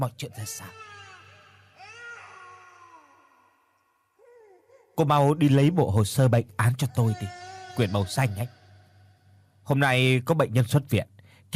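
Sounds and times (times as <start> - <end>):
speech: 0.0 - 0.9, 5.0 - 8.6, 9.7 - 11.5
baby crying in a hospital: 0.3 - 5.4, 6.8 - 9.2.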